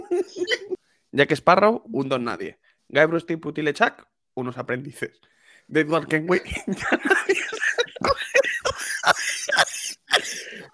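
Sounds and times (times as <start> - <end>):
speech: 0.1 - 8.2
laughter: 6.3 - 10.7
harsh raspy coughing or throat-clearing with a wheezy edge: 6.4 - 10.7.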